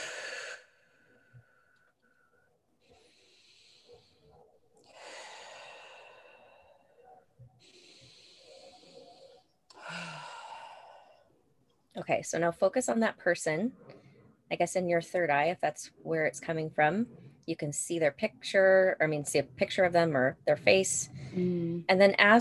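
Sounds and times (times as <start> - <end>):
slow deep breathing in through the nose and out through the mouth: 0.0 - 11.3
speech: 12.0 - 13.9, 14.5 - 22.3.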